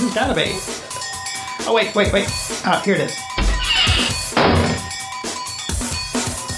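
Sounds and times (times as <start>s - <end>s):
speech: 0.1s - 0.8s, 1.6s - 3.3s
door being opened with clunks and rattling thuds: 3.4s - 5.0s
steady creaky ring: 3.5s - 5.0s.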